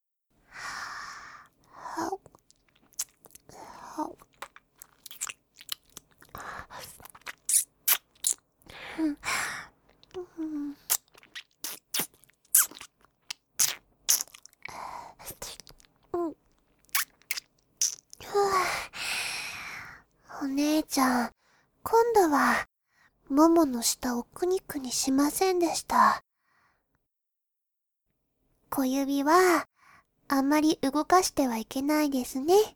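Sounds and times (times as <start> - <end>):
soft breaths and sighs: 0.4 - 2.6, 3.3 - 4.3, 6.2 - 7.1, 8.6 - 10.9, 14.6 - 15.7, 18.2 - 20.5
crunchy biting and chewing mouth sounds close to a microphone: 2.2 - 3.5, 4.1 - 8.4, 9.9 - 14.7, 15.4 - 18.2
speech: 4.0 - 4.2, 21.0 - 22.7, 23.3 - 26.2, 28.8 - 29.7, 30.3 - 32.7.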